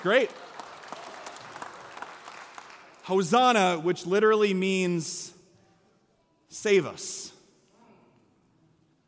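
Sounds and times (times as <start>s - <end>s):
speech: 0.0s - 0.6s, 3.1s - 5.4s, 6.5s - 7.4s
audience applauding after singing together: 0.0s - 3.1s.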